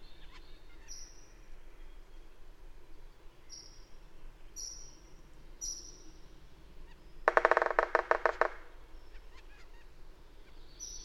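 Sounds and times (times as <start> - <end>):
bird honking notes: 7.3 - 8.8.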